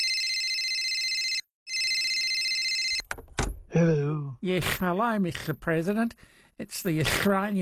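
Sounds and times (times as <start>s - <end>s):
telephone ringing with electronic trill: 0.0s - 3.1s
speech: 3.8s - 7.6s.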